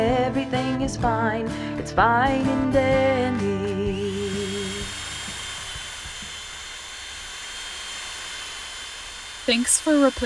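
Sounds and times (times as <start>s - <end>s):
speech: 0.3s - 4.0s, 9.5s - 10.2s
motorized power tool whirring: 3.8s - 10.2s.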